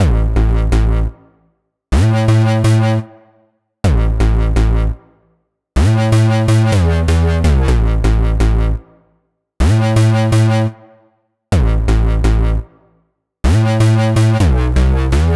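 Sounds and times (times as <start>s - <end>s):
electro synths: 0.0s - 1.1s, 2.0s - 3.0s, 5.8s - 8.8s, 9.6s - 10.7s, 11.6s - 12.6s, 13.5s - 15.3s
bass in A minor at 125 bpm: 0.0s - 1.3s, 1.9s - 3.1s, 3.8s - 5.1s, 5.8s - 9.0s, 9.6s - 10.8s, 11.5s - 15.3s.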